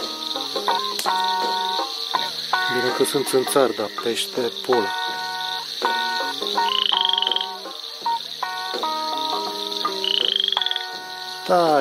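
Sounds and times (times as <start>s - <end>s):
male frog croaking: 0.0s - 11.7s
speech: 2.8s - 5.1s, 11.5s - 11.7s.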